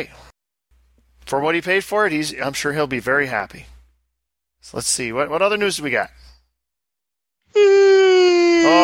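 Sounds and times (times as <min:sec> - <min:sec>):
speech: 0:00.0 - 0:00.3, 0:01.3 - 0:03.7, 0:04.6 - 0:06.3, 0:07.5 - 0:08.0
person yawning: 0:07.5 - 0:08.8.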